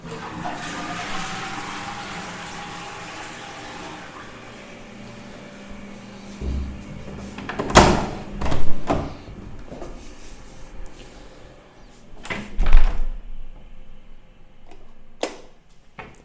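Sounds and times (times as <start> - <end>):
toilet flushing: 0.0 - 12.4.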